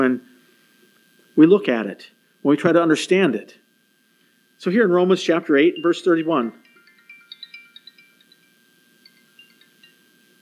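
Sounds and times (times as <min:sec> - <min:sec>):
speech: 0:00.0 - 0:00.3, 0:01.4 - 0:03.6, 0:04.6 - 0:06.6
smartwatch ringing with high bright electronic chimes: 0:05.6 - 0:10.1.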